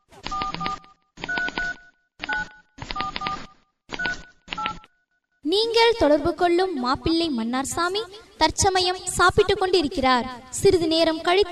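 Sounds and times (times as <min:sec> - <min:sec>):
touch-tone phone keypad beeps as a number is dialed: 0:00.2 - 0:04.9
speech: 0:05.6 - 0:11.5.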